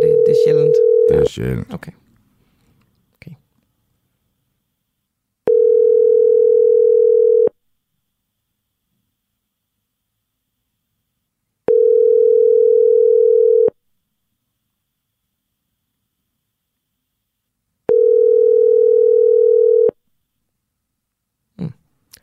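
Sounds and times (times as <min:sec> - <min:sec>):
phone ringback tones of an unanswered call: 0:00.0 - 0:01.2, 0:05.5 - 0:07.5, 0:11.7 - 0:13.7, 0:17.9 - 0:19.9
speech: 0:01.3 - 0:02.0.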